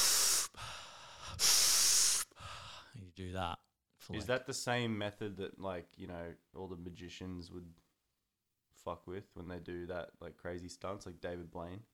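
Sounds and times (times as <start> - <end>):
man imitating hyperventilation with forceful hissing breaths: 0.0 - 2.9
speech: 3.2 - 7.8, 8.8 - 11.9.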